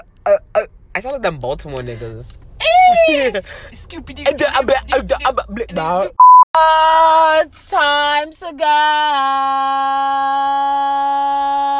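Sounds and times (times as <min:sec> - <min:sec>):
speech: 0:00.3 - 0:11.7
loud flat high-pitched censor bleep: 0:06.2 - 0:06.5.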